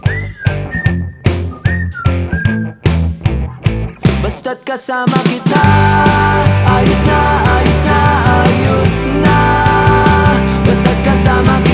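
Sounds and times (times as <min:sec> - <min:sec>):
bright whistled melody with gliding notes: 0:00.0 - 0:03.1
steady punchy beat of music: 0:00.0 - 0:11.7
speech: 0:04.5 - 0:07.4.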